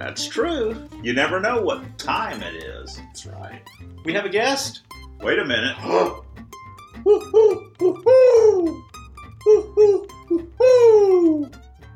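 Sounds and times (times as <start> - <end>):
speech: 0.1 - 6.2, 7.0 - 8.8
mourning dove cooing: 7.0 - 8.8, 9.4 - 11.5.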